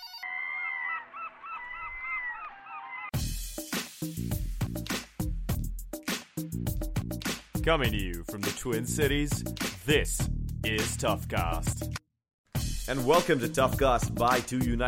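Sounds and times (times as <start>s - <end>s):
seagulls squawking: 0.0s - 3.2s
loud punchy rhythmic music: 3.2s - 12.0s, 12.6s - 14.8s
speech: 4.0s - 4.4s, 7.6s - 12.0s, 12.9s - 14.8s.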